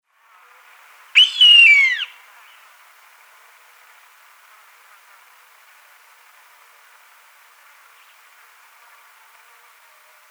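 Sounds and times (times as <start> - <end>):
faint steady hiss: 0.0 - 10.2
gray-lined hawk plaintive whistled scream: 1.2 - 2.2.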